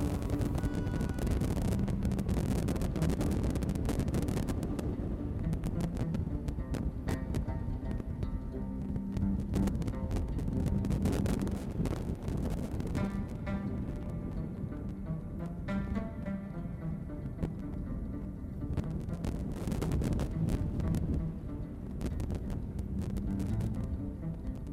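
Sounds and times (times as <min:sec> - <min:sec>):
low rumbling undertone of wind: 0:00.0 - 0:24.7
wind roaring and buffeting in Tangier: 0:00.0 - 0:24.7.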